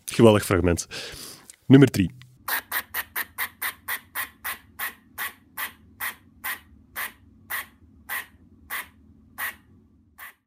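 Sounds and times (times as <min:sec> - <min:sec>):
speech: 0:00.2 - 0:02.2
squirrel barking in sharp raspy chirps: 0:02.5 - 0:10.4.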